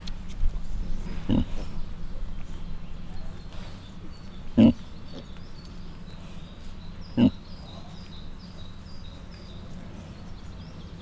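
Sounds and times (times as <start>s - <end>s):
low background hum: 0.0s - 10.9s
Mangalica suckling piglets grunting at a zoo in Miskolc: 0.6s - 7.9s.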